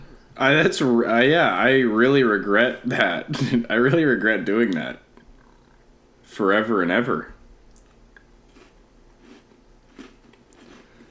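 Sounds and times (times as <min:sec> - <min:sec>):
low hum: 0:00.0 - 0:11.0
speech: 0:00.4 - 0:05.0, 0:06.3 - 0:07.3
crunchy munching of food: 0:07.7 - 0:11.0.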